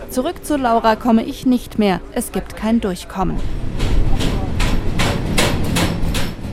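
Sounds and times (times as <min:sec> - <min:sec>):
constant low rumble of a freight train rolling into a railway station: 0:00.0 - 0:06.5
speech: 0:00.1 - 0:03.7
freight train wheels clacking over rail joints: 0:03.2 - 0:06.5.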